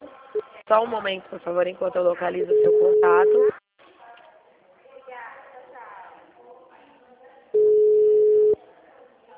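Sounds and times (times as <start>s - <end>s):
speech: 0.7s - 3.5s
steady telephone call connecting tone: 2.5s - 3.6s, 7.6s - 8.6s.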